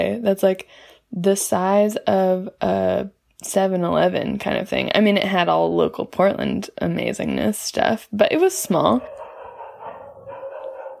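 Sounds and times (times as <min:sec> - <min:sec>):
speech: 0:00.0 - 0:09.2
dog howling with bark-like edges: 0:09.0 - 0:10.9.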